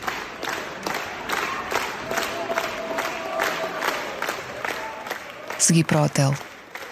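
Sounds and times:
large crowd applauding after opera performance: 0.0s - 6.9s
shouts and cheers: 0.9s - 5.8s
speech: 5.7s - 6.5s.

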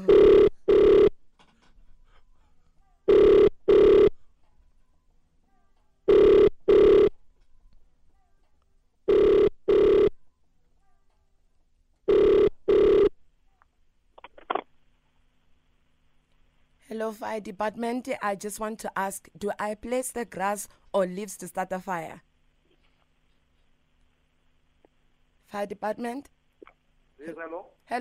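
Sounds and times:
telephone ringing on an outgoing call to the fire department: 0.0s - 1.2s, 3.1s - 4.2s, 6.1s - 7.2s, 9.1s - 10.2s, 12.1s - 13.2s
speech: 17.1s - 22.3s, 25.5s - 26.4s, 27.2s - 27.9s.

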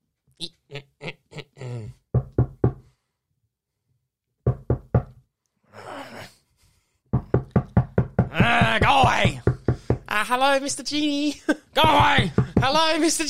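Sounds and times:
speech: 0.4s - 0.8s, 10.3s - 13.2s
loud knocking on a door: 2.1s - 2.9s, 4.4s - 5.2s, 7.1s - 10.2s, 11.8s - 13.0s.

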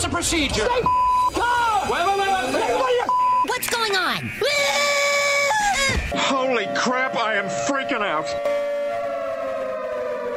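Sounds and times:
speech: 0.2s - 2.2s, 6.2s - 8.7s
civil defense siren wailing: 3.3s - 10.3s.

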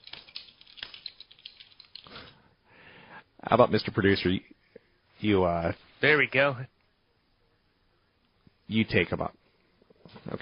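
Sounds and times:
man typing on a computer keyboard: 0.0s - 2.1s
speech: 3.4s - 4.6s, 5.2s - 6.7s, 8.7s - 9.4s, 10.1s - 10.4s.

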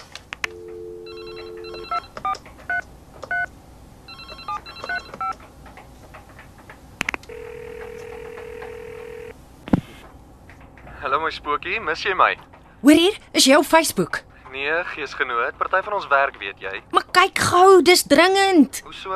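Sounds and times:
steady telephone ringing tone for a call: 0.5s - 2.4s, 4.1s - 5.3s, 7.3s - 9.4s
telephone keypad tones while dialing a call: 0.5s - 3.5s, 4.1s - 5.4s, 7.3s - 9.3s
speech: 11.3s - 19.1s.

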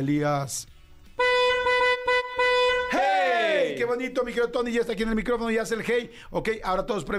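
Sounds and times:
speech: 0.0s - 0.8s, 3.8s - 7.1s
brassy tone sliding downward in pitch: 1.2s - 3.4s
car horn honking in a rhythmic pattern: 1.2s - 3.6s.

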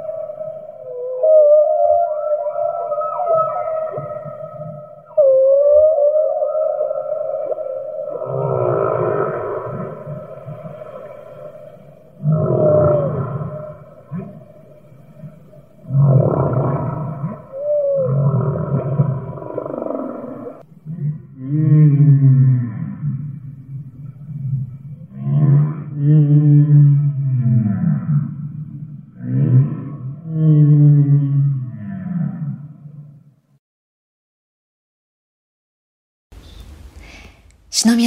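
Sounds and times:
humpback whale song: 0.0s - 33.4s.

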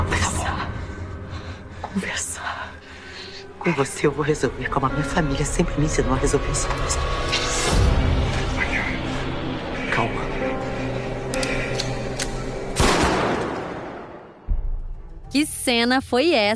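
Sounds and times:
dense continuous TV drama soundtrack: 0.0s - 16.5s
speech: 3.7s - 7.8s, 15.7s - 16.5s
gunshots in a TV drama scene: 12.8s - 14.3s.

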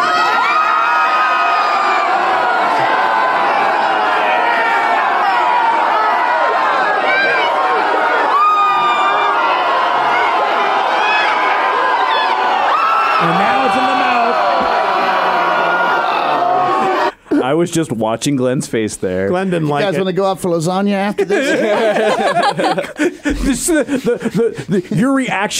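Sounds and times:
high-pitched screams and whoops: 0.0s - 17.1s
large crowd cheering and shouting: 0.0s - 17.2s
speech: 17.6s - 25.5s
laughter: 19.4s - 25.5s.

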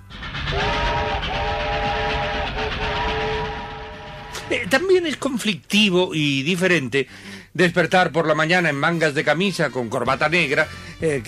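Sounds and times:
train rumbling past on the tracks: 0.0s - 5.4s
train horn long steady blasts: 0.5s - 4.5s
speech: 4.5s - 11.2s.

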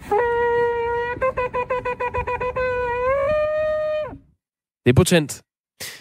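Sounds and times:
man blowing a horn at a protest: 0.0s - 4.2s
speech: 4.8s - 5.9s.

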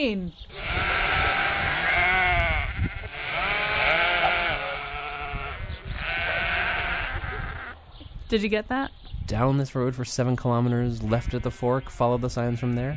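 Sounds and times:
speech: 0.0s - 0.6s, 8.3s - 12.9s
sheep bleating: 0.5s - 7.8s, 11.0s - 12.9s.

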